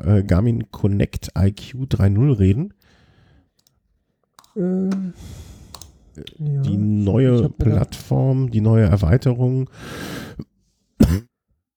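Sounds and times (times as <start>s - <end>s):
speech: 0.0s - 2.9s, 4.6s - 5.5s, 6.2s - 11.3s
person coughing: 11.0s - 11.3s.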